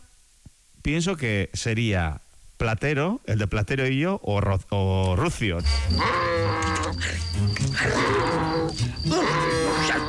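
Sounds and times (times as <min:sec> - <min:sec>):
speech: 0:00.8 - 0:08.2
donkey braying: 0:05.6 - 0:10.0.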